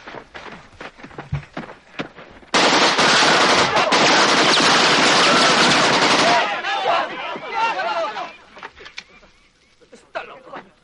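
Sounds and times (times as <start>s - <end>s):
AK-47 assault rifle firing: 2.5s - 6.5s
scattered noises: 2.6s - 10.8s
faint voices: 5.2s - 10.8s.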